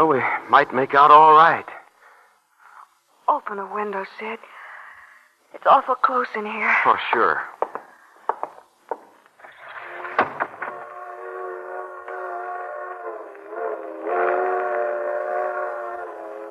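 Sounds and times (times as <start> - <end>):
speech: 0.0 - 1.7, 3.3 - 4.6, 5.5 - 7.5
freight train whistle in a multi-tone wail: 10.6 - 16.4.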